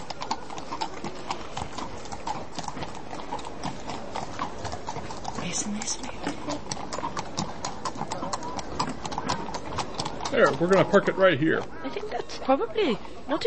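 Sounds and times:
horse hooves clip-clopping past: 0.0s - 13.4s
speech: 5.6s - 6.1s, 10.4s - 13.4s.

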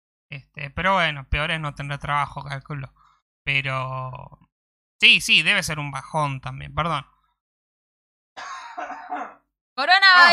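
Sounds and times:
speech: 0.3s - 7.1s, 9.8s - 10.3s
person coughing raspily: 8.4s - 9.5s.

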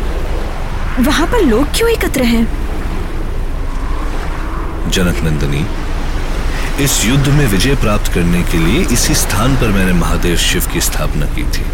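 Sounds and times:
ocean surf roaring at the seashore: 0.0s - 11.7s
wind buffeting: 0.0s - 11.7s
speech: 1.0s - 2.6s, 4.9s - 5.8s, 6.8s - 11.7s.

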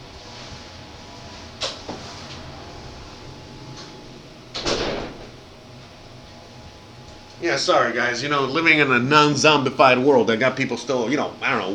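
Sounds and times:
door being closed: 1.6s - 6.1s
door rattling from handling: 3.6s - 5.6s
speech: 7.4s - 11.7s.

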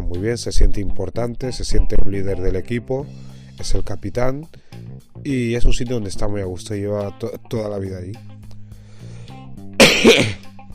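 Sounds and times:
speech: 0.1s - 4.6s, 5.2s - 8.3s, 10.0s - 10.4s
person coughing: 9.8s - 10.5s.

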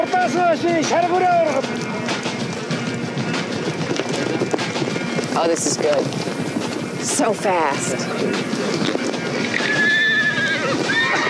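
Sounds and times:
speech: 0.0s - 2.4s, 5.4s - 6.3s, 7.0s - 9.0s
hoofbeats clattering on the ground: 0.0s - 11.2s
horse neighing loudly with a long wavering whinny: 9.5s - 11.2s.

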